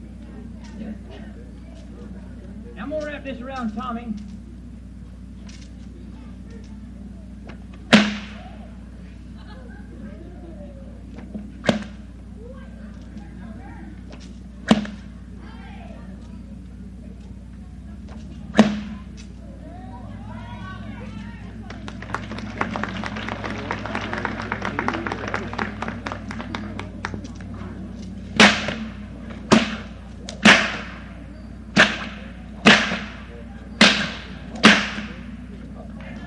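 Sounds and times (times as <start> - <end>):
laughter: 0.2 - 2.8, 8.6 - 11.2, 19.7 - 27.6
speech: 0.8 - 1.4, 2.8 - 4.4
whip being swished and cracked: 7.9 - 8.4, 11.6 - 12.0, 28.0 - 31.0, 31.8 - 35.2.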